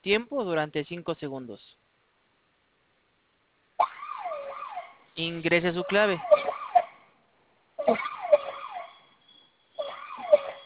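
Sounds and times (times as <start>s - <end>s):
speech: 0.0s - 1.9s, 5.2s - 6.4s, 7.9s - 8.2s
electronic security alarm siren wailing: 3.8s - 7.1s, 7.8s - 10.6s.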